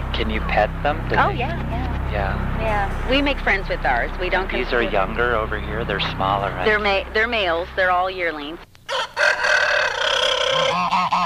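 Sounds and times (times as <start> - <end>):
speech: 0.2 - 9.3
chicken squawking outdoors on a farm: 8.9 - 11.2.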